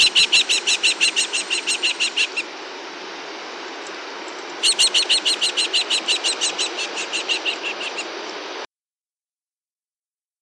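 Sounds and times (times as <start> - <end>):
New Zealand falcon chattering: 0.0 - 2.5, 4.6 - 8.1.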